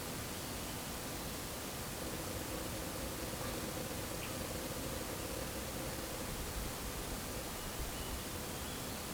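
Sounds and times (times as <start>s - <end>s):
gentle breeze: 0.0s - 9.1s
rippling creek water: 0.0s - 9.1s.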